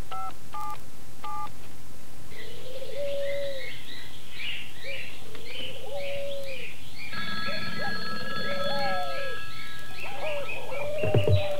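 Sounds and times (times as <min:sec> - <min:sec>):
doves cooing: 0:02.3 - 0:04.0, 0:04.8 - 0:11.5
birds chirping: 0:02.3 - 0:11.5
touch-tone beeps of a telephone number being dialed: 0:07.1 - 0:11.5.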